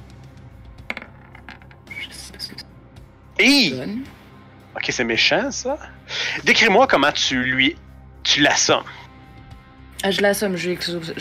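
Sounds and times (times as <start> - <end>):
ten-sided die rolling across a hard surface: 0.9 - 1.8
speech: 3.4 - 4.1, 4.8 - 9.0, 10.0 - 11.1.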